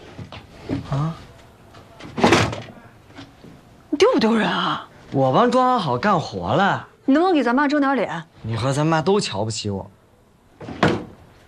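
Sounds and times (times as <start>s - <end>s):
speech: 0.7s - 1.3s, 4.0s - 10.0s
door being pushed shut: 2.1s - 2.7s, 10.6s - 11.2s.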